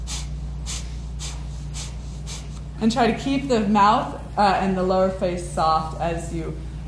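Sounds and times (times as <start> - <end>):
sharp nasal exhales of bellows breath in yoga practice: 0.0 - 2.7
low hum: 0.0 - 6.8
speech: 2.8 - 6.7.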